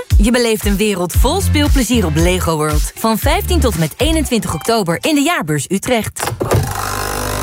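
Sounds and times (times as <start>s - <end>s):
speech: 0.2s - 6.4s
capsule coffee machine brewing with mechanical buzz and humming drone: 6.6s - 7.4s.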